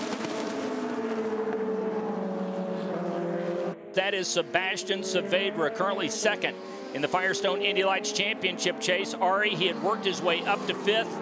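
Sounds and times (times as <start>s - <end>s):
five Indy Lights race car engines roaring past on a track: 0.0s - 11.2s
speech: 4.0s - 11.2s.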